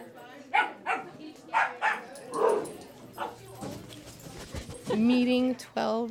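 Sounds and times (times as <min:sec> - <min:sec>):
dog barking in short sharp bursts: 0:00.5 - 0:03.5
speech: 0:04.9 - 0:06.0.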